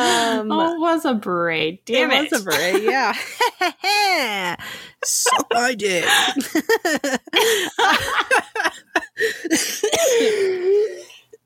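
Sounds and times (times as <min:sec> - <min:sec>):
speech: 0:00.0 - 0:11.1
laughter: 0:02.4 - 0:09.8
person coughing in sharp bursts: 0:09.5 - 0:11.4.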